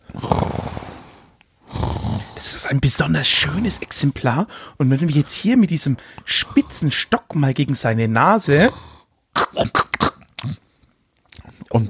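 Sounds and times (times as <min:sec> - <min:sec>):
person imitating human snoring: 0:00.0 - 0:02.5, 0:06.4 - 0:06.9, 0:08.5 - 0:10.6
speech: 0:02.4 - 0:08.9, 0:09.5 - 0:09.8.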